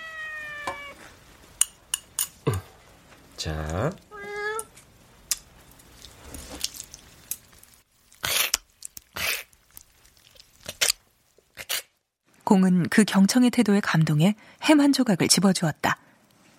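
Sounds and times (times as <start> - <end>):
cat meowing: 0.0 - 1.1, 4.1 - 4.7
speech: 2.5 - 2.7, 3.4 - 4.1, 12.5 - 16.0
scattered clicks and chewing-like noises: 5.3 - 11.9.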